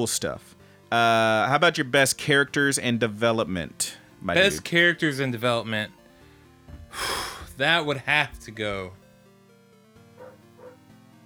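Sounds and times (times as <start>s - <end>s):
speech: 0.0s - 6.0s, 6.9s - 9.0s
dogs barking: 10.1s - 10.8s.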